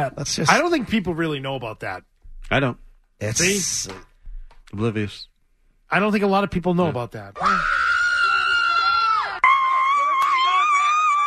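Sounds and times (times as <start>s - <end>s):
speech: 0.0s - 4.1s, 4.7s - 5.3s, 5.9s - 7.8s
woman screaming loudly: 7.4s - 11.2s.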